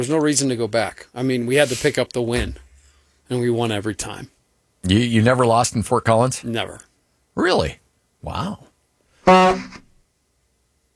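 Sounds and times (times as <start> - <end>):
speech: 0.0 - 2.6, 3.3 - 8.7
loud buzzy horn honk: 9.3 - 9.8.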